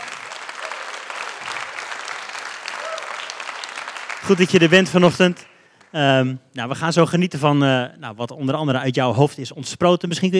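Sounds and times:
audience applauding: 0.0 - 5.9
speech: 4.2 - 10.3.

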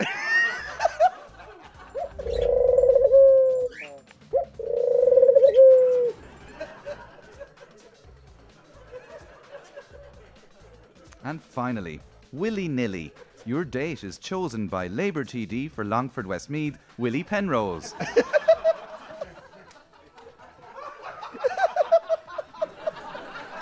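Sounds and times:
laughter: 0.0 - 2.5, 6.1 - 11.2, 12.8 - 13.9, 17.0 - 23.6
pigeon cooing: 2.0 - 6.2
speech: 11.3 - 18.4.

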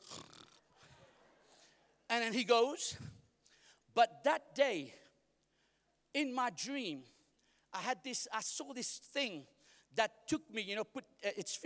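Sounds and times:
person imitating snoring: 0.0 - 0.6
speech: 2.2 - 3.1, 4.0 - 5.0, 6.1 - 11.6.

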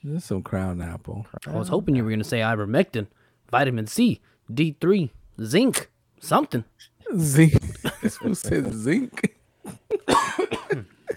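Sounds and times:
speech: 0.0 - 9.4
person coughing: 7.6 - 11.1.

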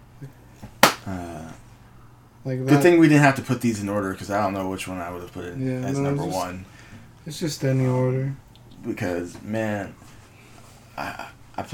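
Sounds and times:
slap: 0.6 - 1.2
speech: 2.4 - 10.1, 11.0 - 11.7.

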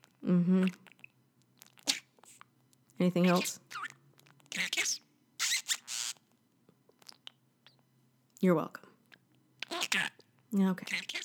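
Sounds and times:
speech: 0.2 - 0.9, 3.0 - 3.9, 8.4 - 8.9, 9.9 - 11.2
pet bird squeaking and chirping: 3.2 - 6.2, 9.6 - 10.1.

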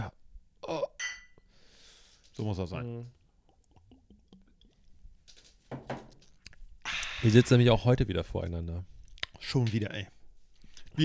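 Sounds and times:
glasses clinking during a toast in Hamburg-Niendorf: 1.0 - 1.4
speech: 2.4 - 3.2, 7.2 - 10.2.

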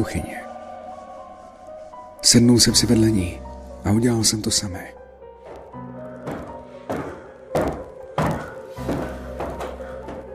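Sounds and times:
speech: 0.0 - 0.5, 2.2 - 5.0
slow heavy footsteps on stairs: 5.4 - 10.3.

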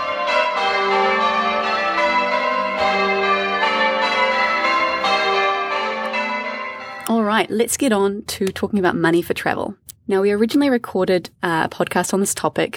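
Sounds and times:
church bells pealing: 0.0 - 7.8
speech: 7.4 - 12.7.

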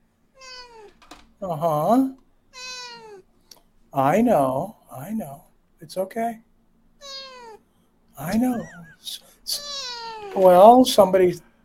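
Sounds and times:
female cat meowing: 0.4 - 1.0, 2.5 - 3.3, 7.0 - 7.7, 8.3 - 10.7
speech: 1.4 - 2.2, 3.9 - 6.5, 8.2 - 9.6, 10.3 - 11.5.

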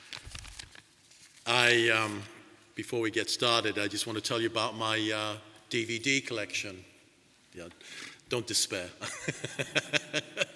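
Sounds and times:
paper rustling: 0.0 - 2.2
speech: 1.5 - 6.9, 7.5 - 10.5
laughter: 9.0 - 10.5.

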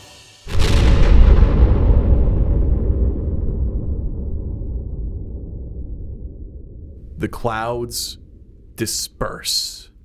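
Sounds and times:
explosion blast high among the clouds: 0.4 - 7.0
heavy deep rumble: 0.5 - 7.3
speech: 7.2 - 8.2, 8.8 - 9.9.

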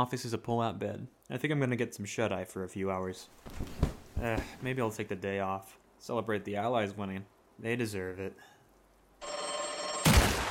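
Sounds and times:
speech: 0.0 - 8.5
telephone bell ringing with metallic jangle: 9.2 - 10.4
gunshot from a bedside gun: 10.0 - 10.4.

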